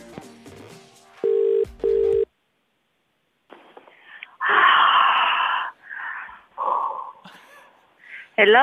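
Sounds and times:
loud double ring burst of telephone: 1.2 - 2.3
person answering phone yawning or sighing: 4.4 - 7.3
speech: 8.4 - 8.6.

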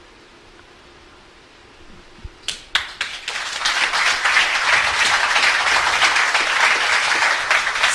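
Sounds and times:
audience applause after a reading: 2.5 - 7.9.

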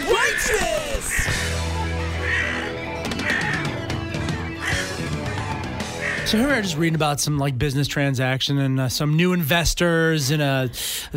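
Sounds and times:
crow cawing: 0.0 - 6.6
speech: 6.3 - 11.1.

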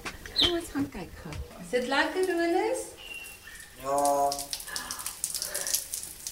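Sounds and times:
speech: 0.7 - 3.0, 3.8 - 4.5
shower water spraying on a parrot: 3.1 - 6.3.

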